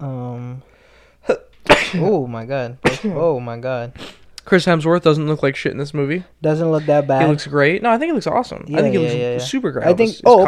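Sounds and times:
person sneezing: 1.2s - 2.1s
speech: 1.9s - 10.4s.

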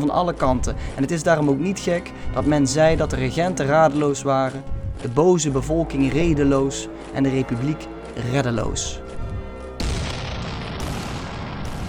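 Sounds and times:
speech: 0.0s - 9.1s
cannon boom: 9.8s - 11.8s.

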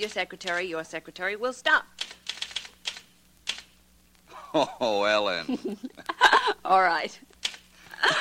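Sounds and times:
typewriter keys clacking: 0.0s - 0.7s, 2.0s - 3.7s
speech: 0.0s - 2.2s, 4.5s - 7.3s
faint steady hum: 0.0s - 8.1s
laughter: 4.3s - 6.7s, 7.9s - 8.1s.

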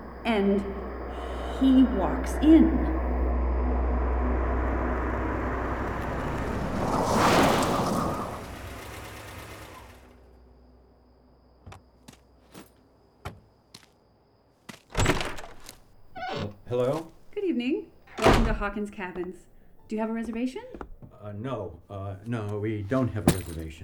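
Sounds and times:
car engine rumbling as it pulls up: 0.0s - 12.4s, 15.0s - 23.8s
car brakes squealing: 0.0s - 12.8s, 15.0s - 23.8s
speech: 0.2s - 0.8s, 1.6s - 3.0s, 18.6s - 23.8s
car doors opening with clicks and thunks: 14.9s - 21.3s.

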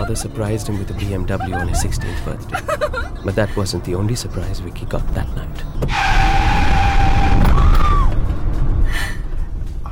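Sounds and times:
laughter: 0.0s - 3.7s
rough road noise: 0.0s - 9.8s
speech: 0.1s - 6.2s
car skidding with long loud tire screech: 5.8s - 8.5s.

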